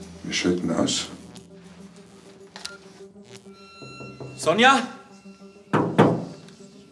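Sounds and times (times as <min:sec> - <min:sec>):
speech: 0:00.2 - 0:01.2, 0:04.4 - 0:05.0
dull heavy knocks on a door: 0:05.8 - 0:06.3.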